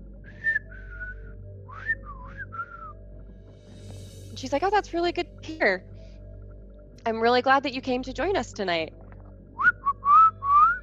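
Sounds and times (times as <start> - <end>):
whistling melodic phrases: 0.3 - 3.0, 9.6 - 10.8
low steady hum: 3.0 - 9.6
speech: 4.4 - 5.9, 7.1 - 9.0.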